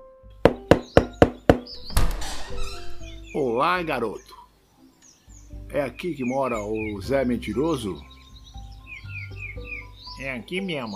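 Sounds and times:
knocking on the wooden door of a house in a small inland town: 0:00.5 - 0:02.1
speech: 0:03.3 - 0:04.4, 0:05.7 - 0:08.2, 0:10.2 - 0:10.9.

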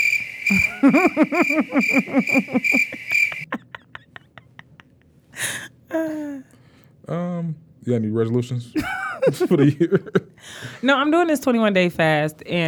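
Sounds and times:
squeaky calls: 0:00.0 - 0:03.6
crickets chirping: 0:00.0 - 0:04.0
speech: 0:00.5 - 0:03.2, 0:07.9 - 0:12.6
laughter: 0:00.5 - 0:05.6, 0:08.8 - 0:10.8.

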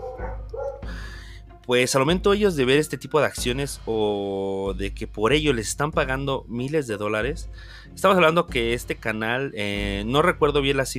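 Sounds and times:
dogs barking: 0:00.0 - 0:01.0
speech: 0:01.7 - 0:10.9.

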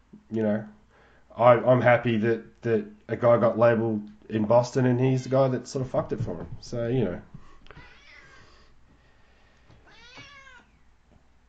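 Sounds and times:
speech: 0:00.2 - 0:00.8, 0:01.4 - 0:07.3
domestic cat meowing: 0:07.8 - 0:08.4, 0:09.8 - 0:10.8.

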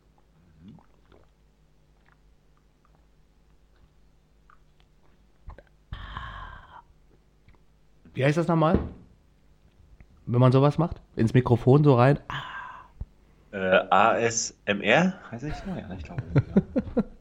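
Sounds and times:
soft wet swallowing sounds: 0:00.0 - 0:05.9
person gulping beer: 0:00.0 - 0:07.6
short breathy exhale of relief: 0:05.9 - 0:06.9
speech: 0:08.2 - 0:09.0, 0:10.3 - 0:12.5, 0:13.6 - 0:16.7
laughter: 0:15.5 - 0:17.1.

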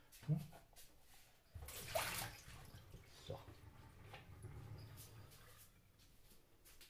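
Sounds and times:
speech: 0:00.2 - 0:00.6
water poured out in a splashing stream: 0:01.6 - 0:05.9.

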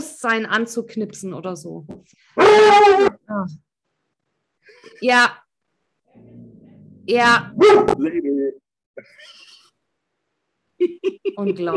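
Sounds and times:
speech: 0:00.2 - 0:03.7, 0:04.7 - 0:05.4, 0:07.1 - 0:09.5, 0:10.8 - 0:11.7
dog yelping: 0:02.4 - 0:03.2.

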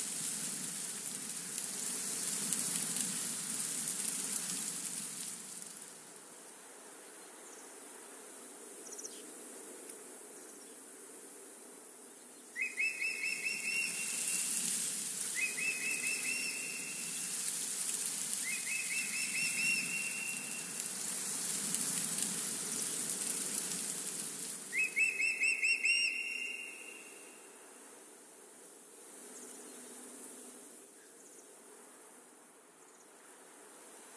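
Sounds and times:
wind rustling the leaves of a forest: 0:00.0 - 0:34.1
bird short bright two-part call: 0:12.6 - 0:14.6, 0:15.3 - 0:17.3, 0:18.4 - 0:20.8, 0:24.7 - 0:27.4.

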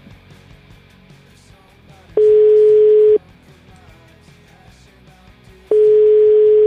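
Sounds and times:
telephone ringback tone while a call is being placed: 0:02.2 - 0:03.2, 0:05.7 - 0:06.6.

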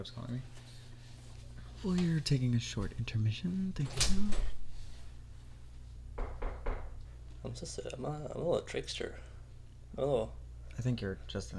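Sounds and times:
speech: 0:00.0 - 0:00.6, 0:01.8 - 0:04.6, 0:07.5 - 0:09.3, 0:09.9 - 0:11.5
knocking on a wooden door: 0:06.2 - 0:07.0.

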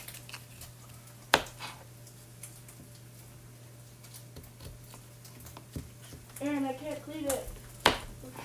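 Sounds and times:
knife chopping cucumber into strips on a board: 0:01.3 - 0:01.8, 0:07.8 - 0:08.2
speech: 0:06.9 - 0:07.5.

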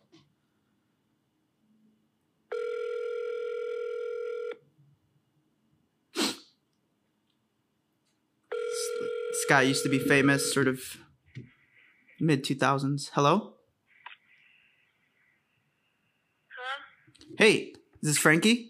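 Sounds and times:
phone ringback tone from an outgoing call: 0:02.5 - 0:04.6, 0:08.5 - 0:10.7
speech: 0:09.5 - 0:11.1, 0:12.2 - 0:13.6, 0:17.4 - 0:18.6.

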